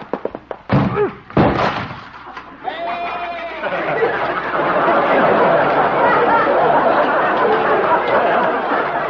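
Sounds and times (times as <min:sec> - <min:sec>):
heavy thuds and slams of a door being smashed through: 0:00.7 - 0:02.2
laughter: 0:02.6 - 0:09.0.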